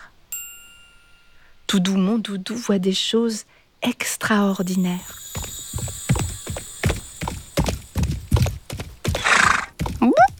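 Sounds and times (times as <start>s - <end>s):
speech: 1.7s - 5.5s
horse hoofbeats clopping: 4.9s - 10.3s
horse whinnying: 9.1s - 9.8s.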